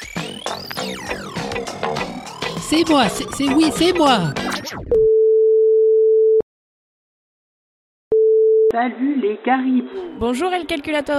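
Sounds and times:
speech: 0:02.7 - 0:04.5, 0:08.7 - 0:11.1
telephone line tone, long clear electronic beep: 0:05.0 - 0:06.4, 0:08.1 - 0:08.7.

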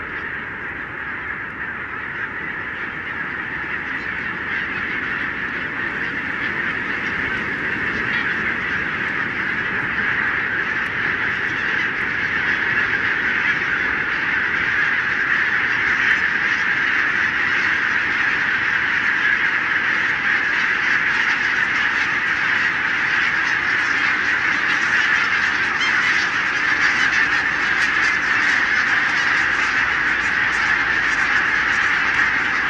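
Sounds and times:
huge winter flock of barnacle geese yapping: 0:00.0 - 0:32.6.

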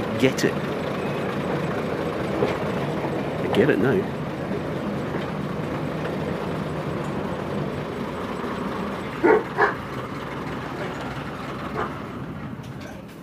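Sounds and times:
diesel train with wooden carriages rumbling: 0:00.0 - 0:13.2
speech: 0:00.2 - 0:00.7, 0:03.6 - 0:04.2
short sharp bark-like sounds: 0:09.2 - 0:09.8, 0:11.8 - 0:12.0.

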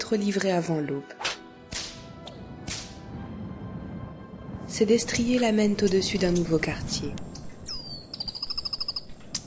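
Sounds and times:
speech: 0:00.1 - 0:01.3, 0:04.8 - 0:07.3
bird giving whistled notes and rapid chirps: 0:07.6 - 0:09.2.

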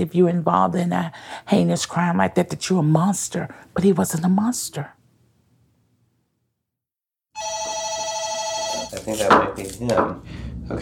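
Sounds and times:
speech: 0:00.0 - 0:05.0, 0:09.0 - 0:10.8
front desk telephone ringing with electronic trill: 0:07.4 - 0:09.0.

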